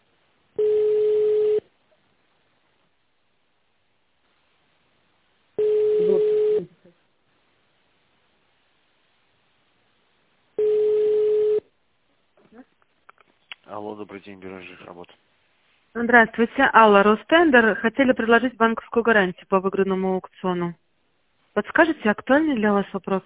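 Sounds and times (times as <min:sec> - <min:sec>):
telephone line tone dialing an extension number: 0:00.6 - 0:01.6, 0:05.6 - 0:06.7, 0:10.6 - 0:11.6
speech: 0:14.0 - 0:15.3, 0:15.9 - 0:20.8, 0:21.6 - 0:23.2.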